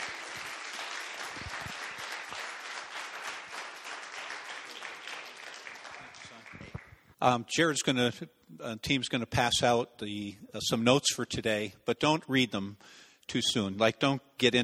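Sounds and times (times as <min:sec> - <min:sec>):
sizable crowd applauding: 0:00.0 - 0:07.1
speech: 0:07.2 - 0:14.6.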